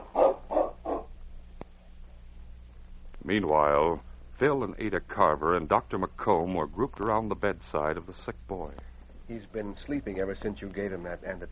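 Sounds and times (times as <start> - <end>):
sled dogs barking: 0.0 - 1.2
low steady hum: 0.0 - 11.5
speech: 3.3 - 11.5.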